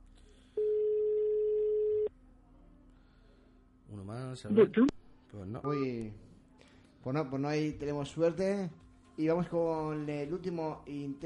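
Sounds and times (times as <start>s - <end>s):
telephone ringback tone while a call is being placed: 0.6s - 2.1s
speech: 4.4s - 6.3s, 7.0s - 11.2s.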